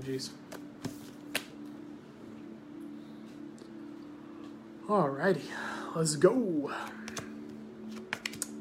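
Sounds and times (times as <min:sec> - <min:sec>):
speech: 0:00.0 - 0:00.5, 0:04.9 - 0:07.0
deck of cards being shuffled for a card reading: 0:00.5 - 0:01.7, 0:06.8 - 0:08.5.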